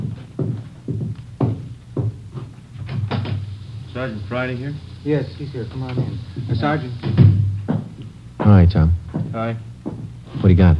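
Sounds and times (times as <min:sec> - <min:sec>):
dull knocks on a back door: 0:00.0 - 0:03.4, 0:05.9 - 0:10.1
speech: 0:04.0 - 0:07.1, 0:08.4 - 0:09.7, 0:10.4 - 0:10.7.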